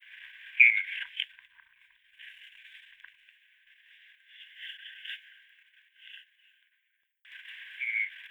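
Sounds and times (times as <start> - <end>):
Eurasian dotterel calling: 0.5 - 1.1, 7.8 - 8.2.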